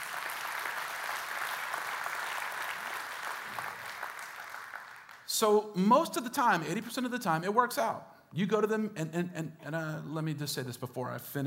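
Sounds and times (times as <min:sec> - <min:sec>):
crowd clapping: 0:00.0 - 0:05.3
speech: 0:05.3 - 0:11.4.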